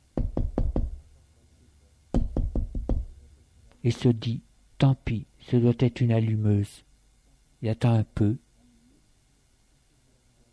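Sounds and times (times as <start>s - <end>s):
knuckles rapping on a hotel room door: 0.2s - 1.0s, 2.1s - 3.2s
speech: 3.8s - 6.9s, 7.6s - 8.4s.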